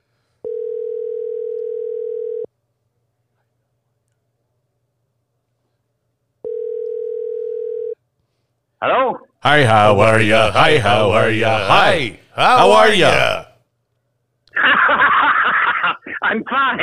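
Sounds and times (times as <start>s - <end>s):
telephone tones while a call is being dialed: 0.4s - 2.5s, 6.4s - 8.0s
speech: 8.8s - 13.4s
laughter: 14.5s - 16.8s.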